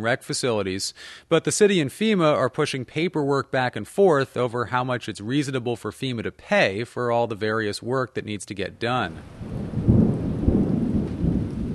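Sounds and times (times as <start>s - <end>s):
speech: 0.0s - 9.6s
thunder rumbling in a lightning storm on a hot afternoon in New Orleans: 9.0s - 11.7s.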